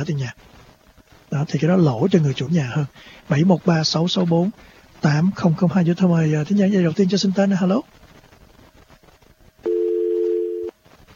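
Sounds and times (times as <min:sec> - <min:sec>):
speech: 0:00.0 - 0:00.6, 0:01.3 - 0:07.9
telephone dial tone after dropped call: 0:09.7 - 0:10.7.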